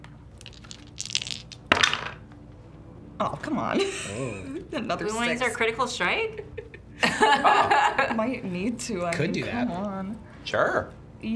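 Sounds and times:
sneak attack dice rattling and clattering onto a hard table: 0:00.4 - 0:02.3
speech: 0:03.2 - 0:06.6, 0:07.2 - 0:11.3
laughter: 0:06.4 - 0:08.3.

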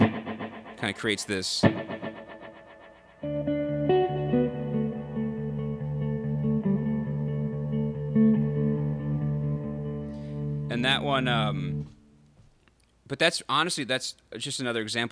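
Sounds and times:
electric guitar riff with echo space reverb effect: 0:00.0 - 0:12.0
speech: 0:00.8 - 0:01.9, 0:11.0 - 0:11.7, 0:13.1 - 0:15.1.

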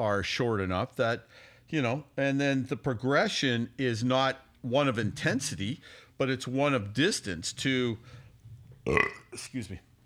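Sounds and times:
speech: 0:00.0 - 0:08.2, 0:08.8 - 0:09.9
loud low burp: 0:08.8 - 0:09.4.

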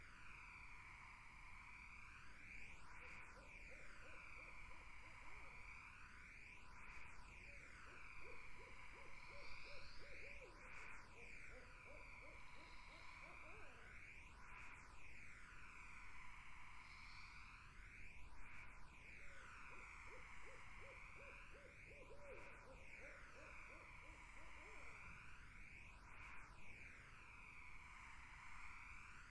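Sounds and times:
high insect chorus in a summer wetland: 0:00.0 - 0:29.2
swirling phased background noise: 0:00.6 - 0:29.2
barred owl hooting in a summer wetland: 0:07.9 - 0:10.5, 0:11.2 - 0:13.8, 0:19.3 - 0:25.0.

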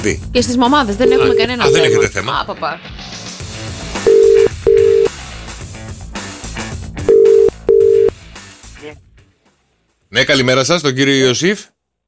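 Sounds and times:
speech: 0:00.0 - 0:03.1, 0:10.1 - 0:11.7
busy music-like bed: 0:00.6 - 0:10.4
telephone ringback tone in a double-ring pattern on a call placed from Thessaloniki: 0:01.0 - 0:02.2, 0:04.0 - 0:05.1, 0:07.0 - 0:08.1.

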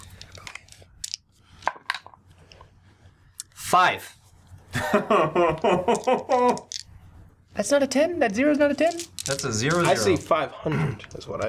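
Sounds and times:
pair of plastic percentile dice clattering across a tabletop: 0:00.0 - 0:02.2, 0:05.6 - 0:06.9, 0:08.3 - 0:10.3
speech: 0:03.7 - 0:04.2, 0:04.8 - 0:06.7, 0:07.6 - 0:11.4
laughter: 0:04.7 - 0:06.7.

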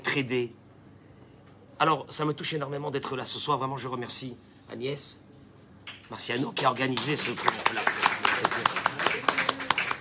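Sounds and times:
speech: 0:00.2 - 0:00.6, 0:01.8 - 0:05.2, 0:06.1 - 0:09.2
audience applause with crisp rhythmic hand clapping: 0:05.8 - 0:09.9.

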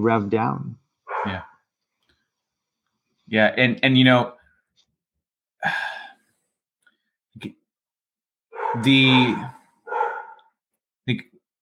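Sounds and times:
speech: 0:00.0 - 0:01.5, 0:03.3 - 0:04.4, 0:05.6 - 0:05.9, 0:07.4 - 0:07.6, 0:08.7 - 0:09.6, 0:11.1 - 0:11.3
stressed pet dog giving strained barks: 0:01.0 - 0:01.6, 0:08.5 - 0:10.6
stressed pet dog whining yelps: 0:08.6 - 0:10.4.

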